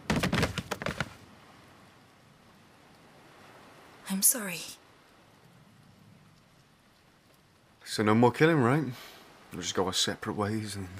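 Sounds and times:
bodies hitting the ground with hard thuds: 0.0 - 1.2
speech: 4.1 - 4.8, 8.0 - 10.9.

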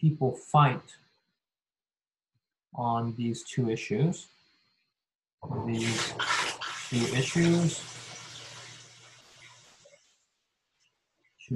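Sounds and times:
speech: 0.0 - 1.0, 2.8 - 4.4, 5.4 - 8.0
dishwasher running with water sloshing: 5.6 - 9.6.

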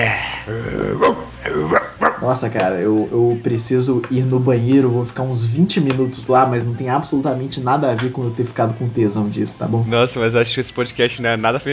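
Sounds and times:
person imitating a dog barking: 0.0 - 2.3
speech: 0.0 - 11.7.

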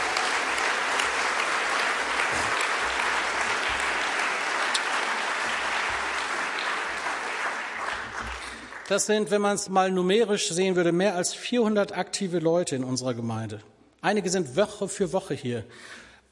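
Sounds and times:
church audience applauding during a sermon: 0.0 - 9.2
speech: 8.9 - 16.1.

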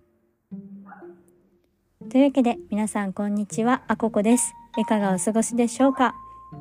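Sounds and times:
dog giving a drawn-out whiny bark: 0.8 - 1.2
speech: 2.0 - 6.5.

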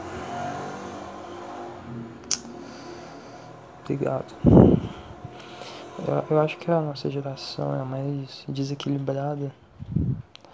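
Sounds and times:
motorcycle engine revving: 0.0 - 7.6
speech: 3.9 - 5.0, 6.0 - 9.6.

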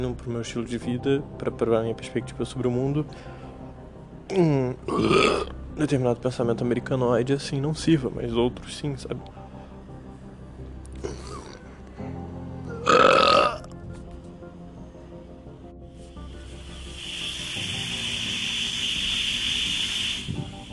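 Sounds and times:
speech: 0.0 - 3.4, 4.3 - 9.4
pressure cooker venting steam: 16.2 - 20.7.

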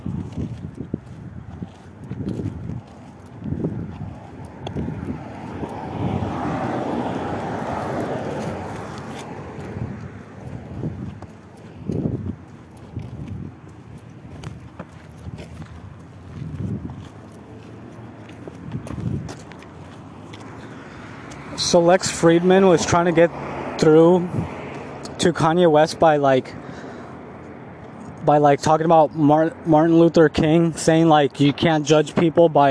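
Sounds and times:
footsteps of an old man walking by: 0.0 - 21.6
broad rushing noise: 0.0 - 32.6
speech: 21.7 - 24.6, 25.2 - 26.6, 28.3 - 32.6.

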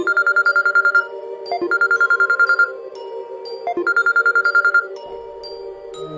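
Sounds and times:
mobile phone electronic ringtone ringing at night: 0.0 - 2.8, 3.7 - 5.1.

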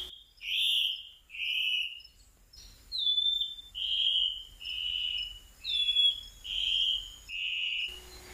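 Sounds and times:
faint Amazon forest ambience: 0.0 - 8.3
rufous-throated antbird singing buzzy whistled notes in Amazon forest: 0.0 - 8.3.

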